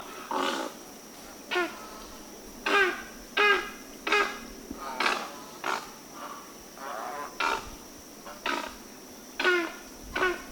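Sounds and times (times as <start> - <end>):
great egret calling: 1.5 - 10.5.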